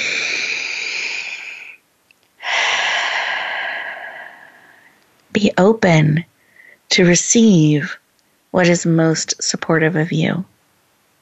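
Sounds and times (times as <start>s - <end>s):
deep breaths: 0.0s - 1.8s, 2.4s - 5.0s, 6.4s - 6.9s
speech: 5.4s - 6.3s, 6.9s - 10.5s.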